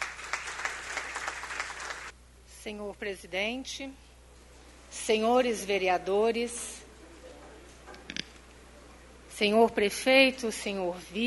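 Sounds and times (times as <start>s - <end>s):
faint applause at a municipal council session: 0.0s - 2.1s
speech: 2.6s - 4.1s, 5.0s - 6.8s, 9.4s - 11.2s.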